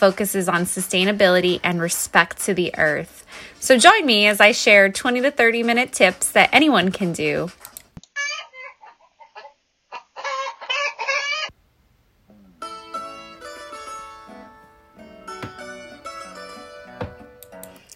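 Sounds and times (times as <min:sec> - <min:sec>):
speech: 0:00.0 - 0:07.7
steady music: 0:00.0 - 0:07.9, 0:12.3 - 0:17.9
chickens clucking: 0:08.2 - 0:11.5.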